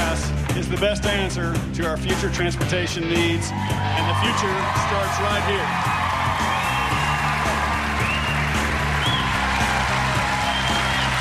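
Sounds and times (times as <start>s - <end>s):
speech: 0.6s - 6.0s
large crowd of about 3,500 people applauding: 3.1s - 11.1s.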